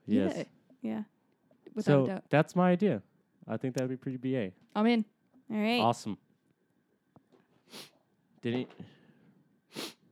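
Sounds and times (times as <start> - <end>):
speech: 0.1 - 6.2, 7.7 - 9.0
person sniffing close to a microphone: 7.7 - 8.0, 9.7 - 10.0.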